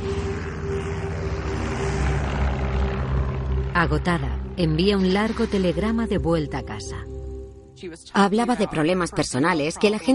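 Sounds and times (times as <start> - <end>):
propeller airplane engine droning as it lands in Lae New Guinea: 0.0 - 7.8
speech: 3.8 - 7.1, 7.8 - 10.1.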